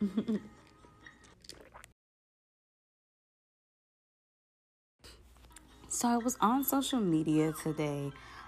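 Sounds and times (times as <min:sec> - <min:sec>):
speech: 0:00.0 - 0:00.6, 0:06.0 - 0:08.3
Electra Moscato wine sipping: 0:00.4 - 0:02.0
wet slurping and mouth sounds: 0:00.5 - 0:02.0.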